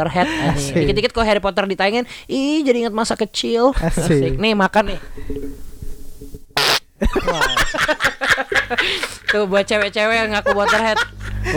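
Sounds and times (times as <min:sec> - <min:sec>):
speech: 0:00.0 - 0:05.6, 0:07.0 - 0:11.5
short loud fart: 0:06.6 - 0:06.8.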